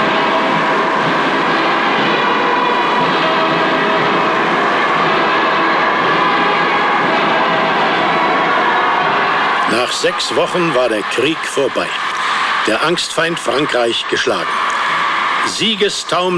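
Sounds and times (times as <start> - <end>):
train rolling along the rails into a station: 0.0 - 12.4
speech: 10.0 - 14.7, 15.4 - 16.3.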